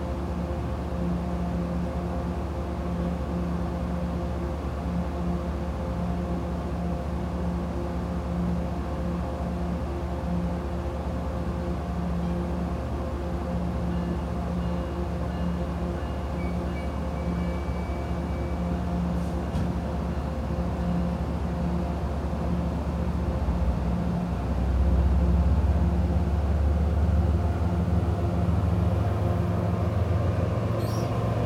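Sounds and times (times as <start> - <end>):
commuter rail train idling with a heavy rumble: 0.0 - 31.4
faint squeal: 30.8 - 31.3.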